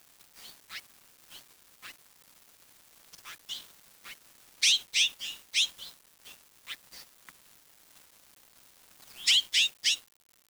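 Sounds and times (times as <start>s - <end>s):
bird giving high thin chirps: 3.3s - 3.7s, 4.6s - 5.9s, 9.1s - 10.0s.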